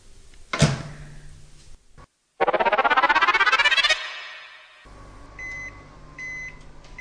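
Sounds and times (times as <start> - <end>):
high electronic microwave oven beeps: 2.4 - 4.9
600-watt microwave oven heating spaghetti in water: 4.9 - 6.9.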